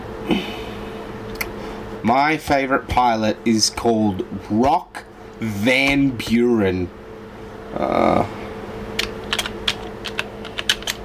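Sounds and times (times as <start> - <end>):
speech: 0.3 - 0.5, 2.0 - 7.0, 7.7 - 8.4
typing on a computer keyboard into a document: 9.0 - 11.0.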